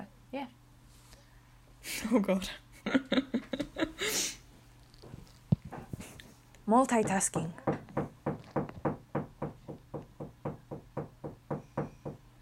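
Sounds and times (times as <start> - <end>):
speech: 0.3 - 0.6, 1.8 - 3.3, 6.7 - 7.8
dog making dull knocking thumps: 6.9 - 12.2.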